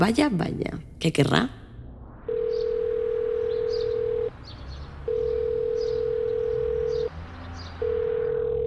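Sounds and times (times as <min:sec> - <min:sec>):
speech: 0:00.0 - 0:01.6
telephone ringback tone for an unanswered call: 0:02.3 - 0:04.3, 0:05.1 - 0:07.1, 0:07.8 - 0:08.6.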